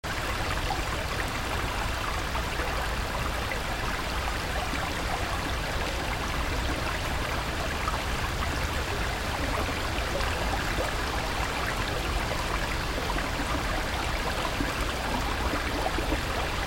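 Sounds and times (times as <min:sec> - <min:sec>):
background noise: 0:00.0 - 0:16.6.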